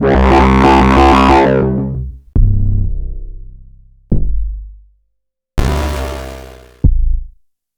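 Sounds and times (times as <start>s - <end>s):
bass C note: 0.0s - 4.7s, 5.6s - 7.3s.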